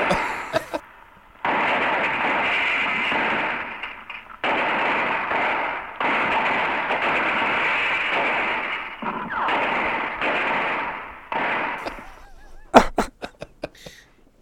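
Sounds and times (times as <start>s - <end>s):
laughter: 0.0s - 0.8s, 11.8s - 14.0s
guns shooting: 1.4s - 12.9s.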